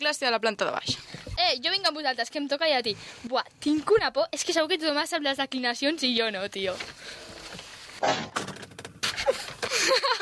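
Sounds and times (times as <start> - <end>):
speech: 0.0 - 8.5, 9.8 - 10.2
person tumbling down a flight of school stairs: 8.0 - 10.2.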